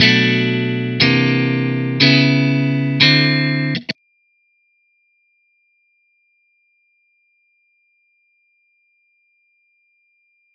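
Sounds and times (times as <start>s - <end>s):
dry amplified guitar chords: 0.0s - 4.0s.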